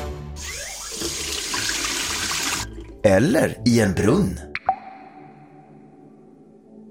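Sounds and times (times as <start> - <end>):
water running from a tap into a sink: 0.4 - 3.0
speech: 3.0 - 4.5.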